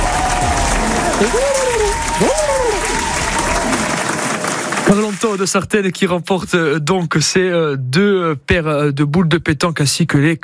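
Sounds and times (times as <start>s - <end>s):
crowd applauding: 0.0s - 5.8s
speech: 1.2s - 1.6s, 4.9s - 10.4s.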